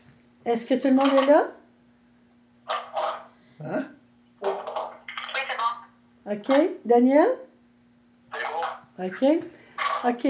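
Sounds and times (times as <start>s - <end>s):
faint steady electrical hum: 0.0s - 10.2s
speech: 0.4s - 1.6s, 3.6s - 3.9s, 6.3s - 7.4s, 9.0s - 10.2s
dog barking: 2.7s - 3.3s, 9.8s - 10.1s.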